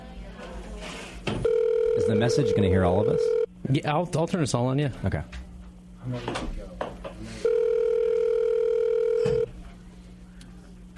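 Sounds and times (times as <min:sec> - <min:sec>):
telephone ringback tone during an outgoing call: 0:01.4 - 0:03.5, 0:07.4 - 0:09.5
speech: 0:02.0 - 0:05.4, 0:06.0 - 0:06.7.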